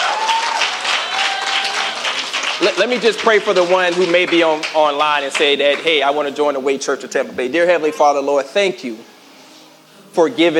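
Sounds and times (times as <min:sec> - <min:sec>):
sustained applause from an audience: 0:00.0 - 0:05.8
speech: 0:02.6 - 0:09.1, 0:10.1 - 0:10.5.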